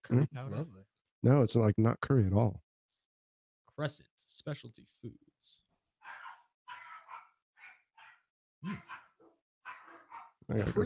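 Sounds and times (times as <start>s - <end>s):
speech: 0.1s - 2.6s, 3.8s - 5.6s, 8.6s - 9.0s, 10.5s - 10.8s
several dogs barking sharply: 6.0s - 10.4s.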